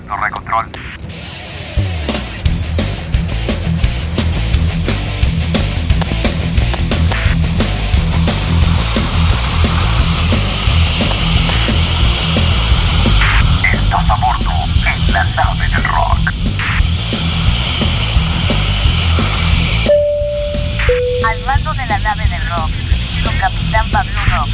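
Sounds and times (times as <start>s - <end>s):
airplane taking off with engine roar: 0.0s - 24.5s
speech: 0.1s - 0.9s
regular rhythmic pulsing: 2.9s - 24.5s
thin high whine rising in pitch: 4.3s - 13.6s, 16.2s - 22.0s.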